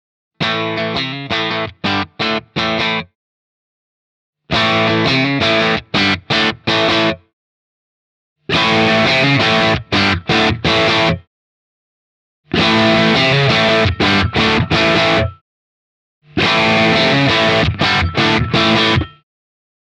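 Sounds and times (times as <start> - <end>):
electric guitar with overdrive: 0.4 - 3.1, 4.5 - 7.3, 8.5 - 11.2, 12.5 - 15.4, 16.3 - 19.2.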